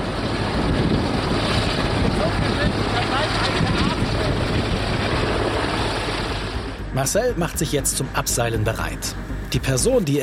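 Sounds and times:
strong wind buffeting the microphone: 0:00.0 - 0:06.9
faint engine or water noise: 0:00.0 - 0:07.0
speech: 0:07.0 - 0:10.2.

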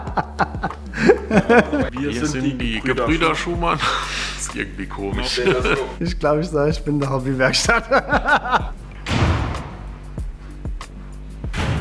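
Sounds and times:
laughter: 0:00.0 - 0:06.0, 0:07.4 - 0:09.0
speech: 0:01.3 - 0:08.7
heavy door slamming shut in a reverberant space: 0:09.0 - 0:09.9, 0:11.5 - 0:11.8.

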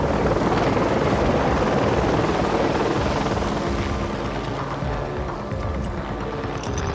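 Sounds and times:
helicopter rotor and engine roaring: 0:00.0 - 0:06.9.

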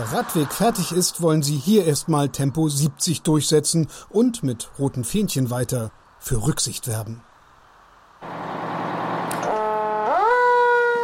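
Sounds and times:
speech: 0:00.0 - 0:07.3
emergency vehicle siren blaring and wailing at an airfield: 0:08.2 - 0:11.0.

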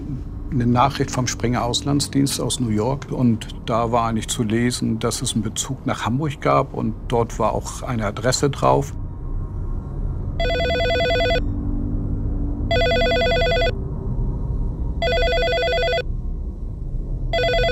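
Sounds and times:
low hum: 0:00.0 - 0:17.7
speech: 0:00.5 - 0:09.0
telephone bell ringing: 0:10.4 - 0:11.5, 0:12.7 - 0:13.8, 0:15.0 - 0:16.1, 0:17.3 - 0:17.7.

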